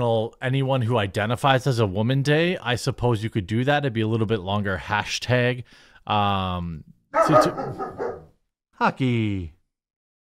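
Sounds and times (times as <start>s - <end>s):
speech: 0.0s - 8.0s, 8.8s - 9.6s
dog barking and yelping downstairs: 7.2s - 8.3s.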